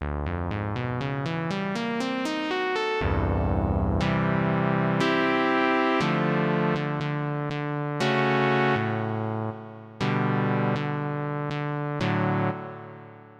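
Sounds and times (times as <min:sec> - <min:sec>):
bass: 0:00.0 - 0:01.6, 0:03.0 - 0:13.0
lead melody: 0:02.6 - 0:13.2.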